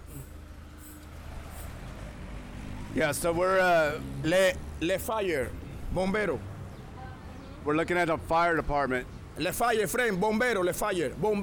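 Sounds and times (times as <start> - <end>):
car passing by: 0.6 - 5.7
speech: 3.0 - 6.5, 7.6 - 11.4.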